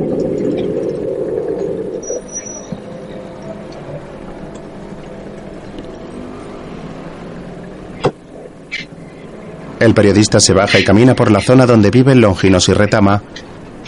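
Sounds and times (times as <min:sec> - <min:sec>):
taxi engine rumbling: 0:00.0 - 0:09.9
speech: 0:09.8 - 0:13.5.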